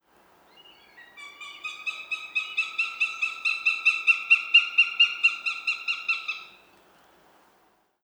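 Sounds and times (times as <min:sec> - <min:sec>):
Northern Goshawk Accipiter gentilis call: 0:00.5 - 0:06.7.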